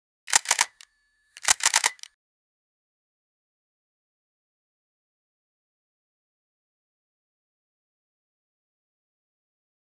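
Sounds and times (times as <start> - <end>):
crisp high fidelity camera: 0.3 - 0.8, 1.4 - 2.1.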